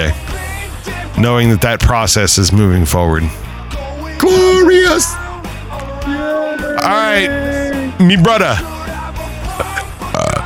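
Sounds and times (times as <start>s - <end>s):
speech: 1.2s - 3.5s, 4.2s - 5.2s, 6.8s - 8.7s
loud burp: 9.6s - 10.4s.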